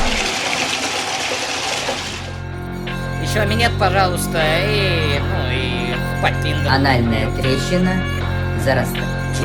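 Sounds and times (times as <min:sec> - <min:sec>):
urinal flushing: 0:00.0 - 0:02.5
speech: 0:03.4 - 0:09.4.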